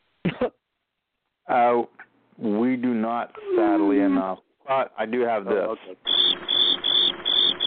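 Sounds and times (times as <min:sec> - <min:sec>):
speech: 0:01.5 - 0:06.4
cricket chirping: 0:06.0 - 0:07.6.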